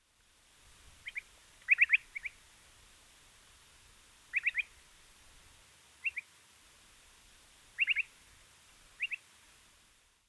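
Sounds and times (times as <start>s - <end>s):
Upland Sandpiper Bartramia longicauda calling: 1.0s - 2.4s, 4.3s - 4.8s, 6.0s - 6.3s, 7.8s - 8.1s, 9.0s - 9.2s.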